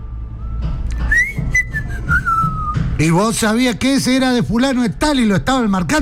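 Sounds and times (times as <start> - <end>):
low rumbling noise: 0.0 - 6.0
parent whistling a call to summon children home: 0.4 - 3.0
speech: 3.0 - 6.0.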